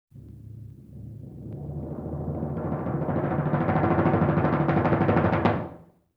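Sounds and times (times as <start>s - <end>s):
lo-fi timpani roll in vintage cartoon style: 0.1s - 5.9s.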